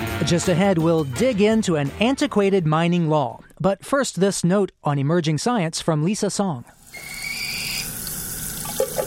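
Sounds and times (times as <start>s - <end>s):
speech: 0.2s - 7.1s
water pouring from a faucet into a sink: 6.8s - 9.0s.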